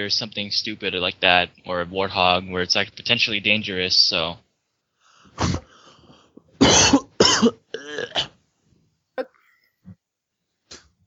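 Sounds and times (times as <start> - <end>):
speech: 0.0 - 4.4, 5.4 - 5.6, 6.8 - 8.2
man coughing harshly: 6.6 - 8.3.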